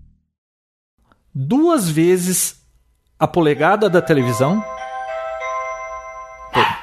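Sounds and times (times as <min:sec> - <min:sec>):
speech: 0:01.4 - 0:02.6, 0:03.2 - 0:04.8
doorbell chiming: 0:03.4 - 0:06.8.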